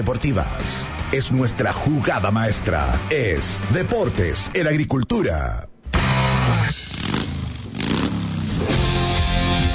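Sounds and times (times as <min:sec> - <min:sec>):
speech: 0:00.0 - 0:05.7
engine revving while accelerating: 0:06.0 - 0:09.6.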